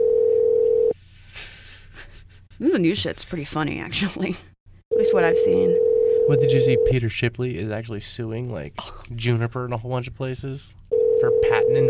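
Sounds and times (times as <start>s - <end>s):
telephone ring tone from an outgoing call: 0.0s - 1.0s, 4.9s - 7.0s, 10.9s - 11.8s
speech: 2.6s - 11.8s.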